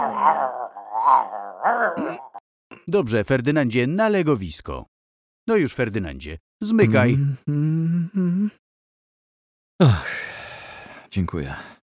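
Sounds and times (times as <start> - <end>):
dog growling with a whine-like edge: 0.0 - 2.4
speech: 0.0 - 4.9, 5.5 - 8.6, 9.8 - 10.3, 11.1 - 11.8.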